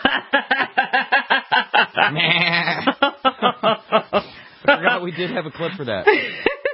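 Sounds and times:
laughter: 0:00.0 - 0:06.7
goat bleating: 0:02.1 - 0:02.9
speech: 0:02.1 - 0:02.9, 0:05.2 - 0:06.5.

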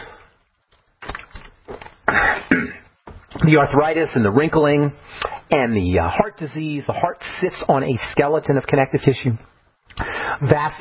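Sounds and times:
person clearing throat with something caught in the throat: 0:02.0 - 0:03.0
speech: 0:03.4 - 0:10.7.

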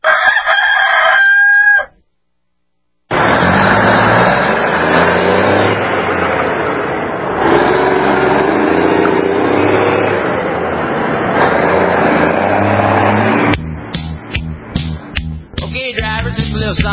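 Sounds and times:
rooster crowing: 0:00.0 - 0:02.0
dense steady roar: 0:03.1 - 0:16.9.

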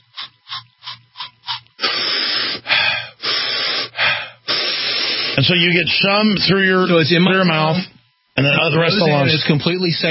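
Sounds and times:
aerosol spray pumped as an inhaled home remedy for a chest cold: 0:01.4 - 0:05.4
breathy hisses as the aerosol mist is drawn in: 0:01.5 - 0:05.4
speech: 0:05.4 - 0:10.0.

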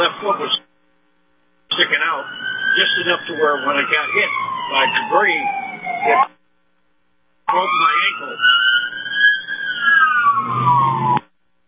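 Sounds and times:
fire truck siren passing by: 0:01.7 - 0:06.3, 0:07.5 - 0:11.2
speech: 0:03.0 - 0:06.4, 0:07.5 - 0:08.6.

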